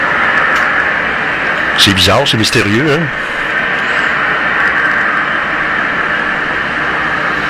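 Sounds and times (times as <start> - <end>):
loud steady mechanical drone with roaring hiss: 0.0 - 7.4
speech: 1.8 - 3.4.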